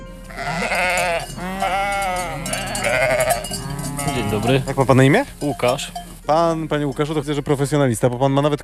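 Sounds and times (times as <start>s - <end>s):
sheep bleating in a flock: 0.1s - 4.9s
speech: 4.2s - 8.6s.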